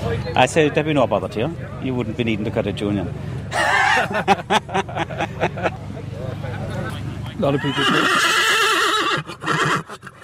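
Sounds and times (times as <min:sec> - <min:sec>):
speech: 0:00.2 - 0:05.7, 0:07.4 - 0:08.4
horse neighing: 0:03.5 - 0:04.2, 0:07.5 - 0:10.2
laughter: 0:03.5 - 0:08.3
horse snorting: 0:07.6 - 0:10.2.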